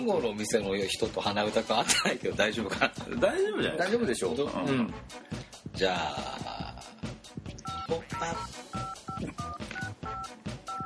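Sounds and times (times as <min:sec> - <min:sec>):
speech: 0:00.0 - 0:06.5, 0:07.9 - 0:08.6
telephone keypad dialing an international call: 0:07.6 - 0:10.8.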